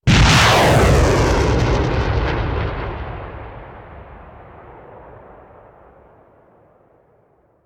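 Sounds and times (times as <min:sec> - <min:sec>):
artillery missile launcher: 0:00.1 - 0:05.4.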